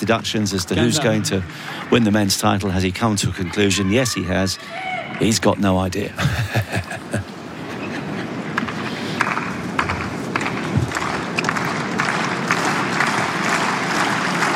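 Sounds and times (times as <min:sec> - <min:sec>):
speech: 0:00.0 - 0:07.3
laughter: 0:00.7 - 0:04.0, 0:06.0 - 0:08.5
large outdoor crowd clapping and cheering at a tennis match at Roland Garros: 0:08.6 - 0:14.5.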